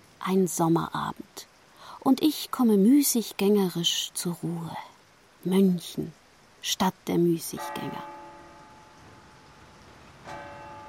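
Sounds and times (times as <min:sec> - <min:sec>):
hiss: 0:00.0 - 0:10.8
speech: 0:00.2 - 0:08.1
church bell striking the hour in Munich on a summer evening: 0:07.6 - 0:09.4, 0:10.2 - 0:10.8.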